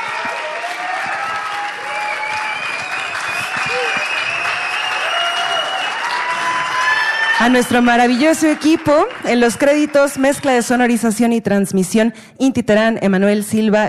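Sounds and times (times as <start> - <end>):
live audience applauding after a music ensemble performance: 0.0 - 10.8
speech: 7.4 - 13.8.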